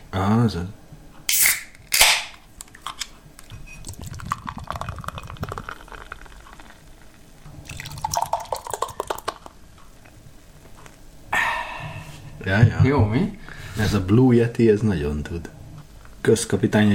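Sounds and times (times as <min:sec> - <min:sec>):
speech: 0:00.1 - 0:00.8, 0:12.9 - 0:15.6, 0:16.2 - 0:16.9
can or bottle of beer cracking open: 0:01.3 - 0:03.1
beer pouring and fizzing in a bubbling, gurgling stream: 0:03.8 - 0:09.6.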